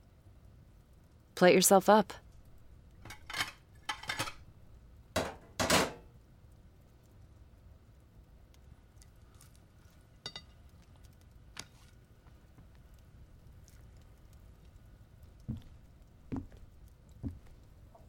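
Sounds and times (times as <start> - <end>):
speech: 1.4 - 2.2
ceramic and metal dishes dropped into a sink: 3.0 - 4.4, 5.2 - 6.0.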